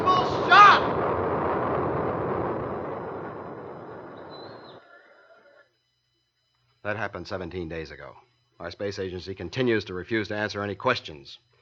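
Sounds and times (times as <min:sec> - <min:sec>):
rocket lifting off at launch: 0:00.0 - 0:05.4
speech: 0:06.9 - 0:11.5.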